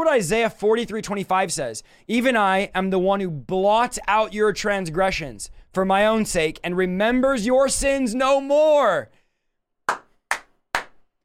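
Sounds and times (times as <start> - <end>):
speech: 0.0 - 9.2
sharp loud hand claps: 9.9 - 11.1.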